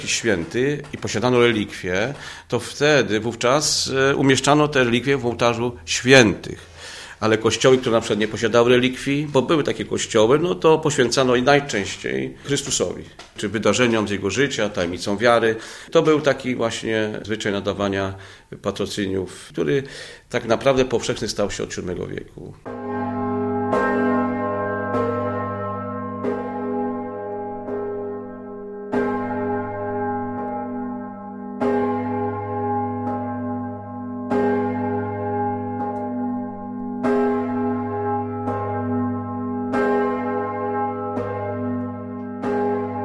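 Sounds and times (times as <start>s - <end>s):
large cathedral church bell tolling: 0.0s - 6.4s, 7.2s - 12.9s, 22.6s - 43.0s
speech: 0.0s - 22.8s.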